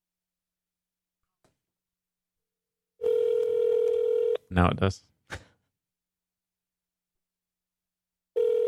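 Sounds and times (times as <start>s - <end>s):
phone line ringback tone from an outgoing call: 3.0s - 4.4s, 8.4s - 8.6s
speech: 4.5s - 5.4s.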